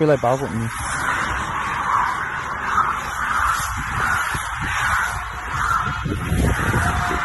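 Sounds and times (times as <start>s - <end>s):
speech: 0.0s - 1.0s
racing bicycles whooshing past at high speed: 0.0s - 7.2s
steady roaring background: 0.0s - 7.2s.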